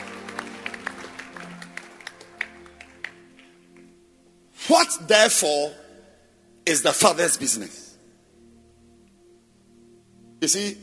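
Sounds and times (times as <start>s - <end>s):
church congregation clapping during a service: 0.0s - 4.0s
speech: 4.7s - 5.8s, 6.7s - 7.8s, 10.4s - 10.8s.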